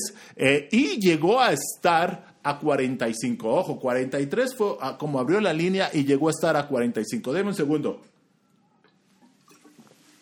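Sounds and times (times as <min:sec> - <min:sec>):
speech: 0:00.4 - 0:08.1
person sipping water: 0:08.5 - 0:10.2.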